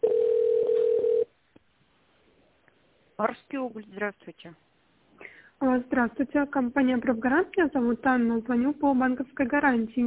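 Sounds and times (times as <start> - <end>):
telephone ringing tone while call is transferred to a secretary: 0.0 - 1.3
speech: 3.2 - 4.7, 5.6 - 10.0.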